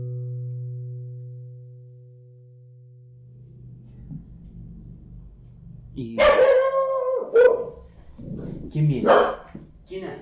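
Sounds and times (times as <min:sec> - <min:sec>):
steady low hum: 0:03.2 - 0:10.2
dog barking with a whining howl-like edge: 0:06.2 - 0:07.9, 0:08.9 - 0:09.6.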